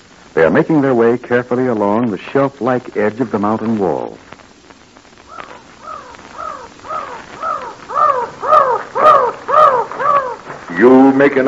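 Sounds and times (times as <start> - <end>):
speech: 0.4 - 4.3, 10.8 - 11.4
mountain crows cawing: 5.2 - 11.2.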